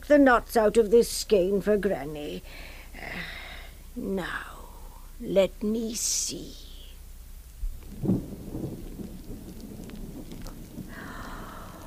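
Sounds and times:
speech: 0:00.1 - 0:03.4, 0:04.0 - 0:04.6, 0:05.2 - 0:06.6
steady rain hissing in a thunderstorm: 0:01.1 - 0:11.8
deep rolling rumble of thunder: 0:07.6 - 0:11.8.

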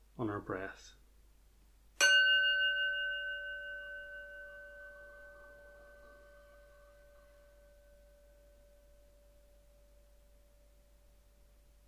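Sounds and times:
speech: 0:00.2 - 0:01.0
mindfulness bell ringing: 0:02.0 - 0:11.0.

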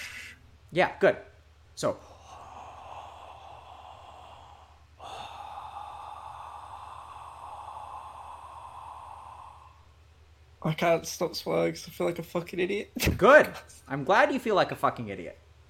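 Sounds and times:
speech: 0:00.7 - 0:02.1, 0:10.6 - 0:15.6
person imitating a masked villain's heavy mechanical breathing: 0:02.0 - 0:09.9.

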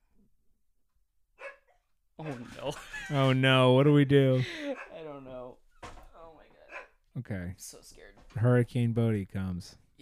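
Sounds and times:
dog barking at the door: 0:01.4 - 0:01.8, 0:04.7 - 0:05.0, 0:06.7 - 0:07.0
speech: 0:02.2 - 0:04.8, 0:07.2 - 0:10.0.

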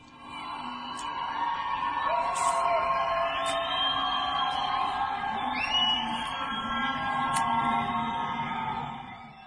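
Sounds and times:
crowd cheering and whooping at night: 0:00.5 - 0:09.4
sharp whistles: 0:03.1 - 0:07.0.

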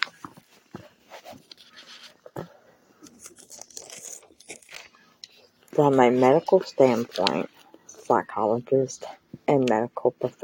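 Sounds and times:
paper page being turned: 0:00.0 - 0:02.2, 0:03.0 - 0:08.1
speech: 0:05.8 - 0:10.4.

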